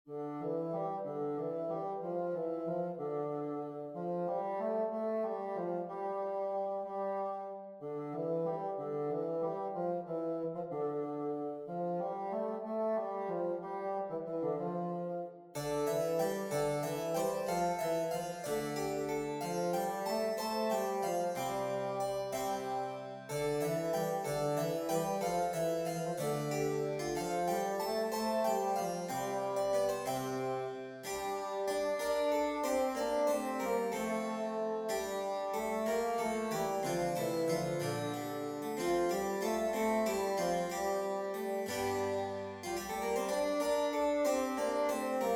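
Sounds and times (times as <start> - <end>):
bassoon: 0.1 - 45.3
harpsichord: 15.6 - 45.3.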